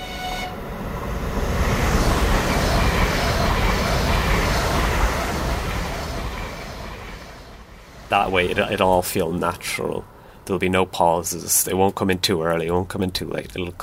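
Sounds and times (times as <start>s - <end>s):
train rumbling past as a theatre sound cue: 0.0s - 10.9s
speech: 8.1s - 13.8s.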